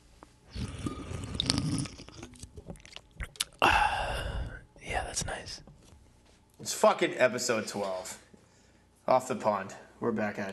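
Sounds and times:
person sipping a drink in a garage: 0.5s - 4.6s
speech: 6.7s - 8.2s, 9.1s - 10.5s.

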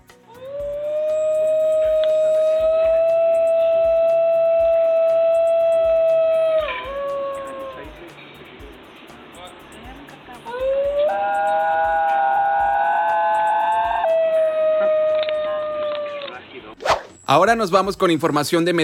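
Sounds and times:
singing dogs howling: 0.3s - 8.0s, 10.5s - 16.4s
speech: 17.3s - 18.8s.

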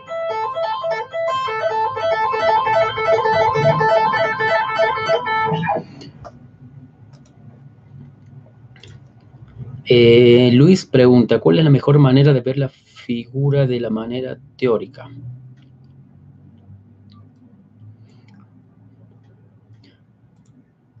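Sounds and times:
electric guitar tapping pull-off notes through heavy gain and distortion: 0.0s - 6.4s
quiet noise: 0.0s - 20.9s
speech: 9.9s - 15.4s.

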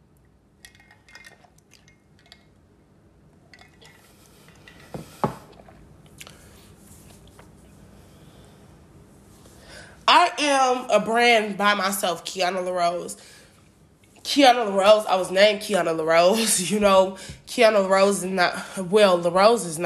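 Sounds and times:
person sipping a drink: 3.6s - 7.3s
speech: 10.3s - 13.4s, 14.3s - 19.8s.

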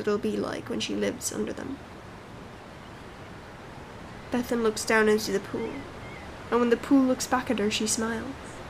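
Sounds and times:
speech: 0.0s - 2.0s, 4.3s - 8.5s
ocean surf: 0.0s - 8.6s.

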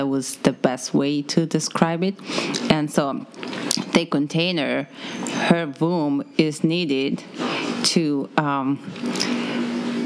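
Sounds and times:
speech: 0.0s - 9.6s
washing machine running: 4.4s - 10.0s.

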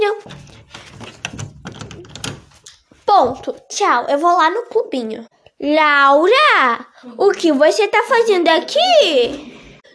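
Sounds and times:
door swinging shut with a thump: 0.2s - 2.6s
lock being turned with metallic clicks and rattles: 0.3s - 2.6s
speech: 3.2s - 9.5s.

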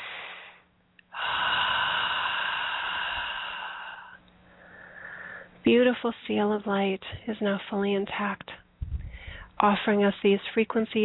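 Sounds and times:
person taking a long deep breath slowly: 0.0s - 5.5s, 9.0s - 9.5s
speech: 5.7s - 8.6s, 9.6s - 11.0s.

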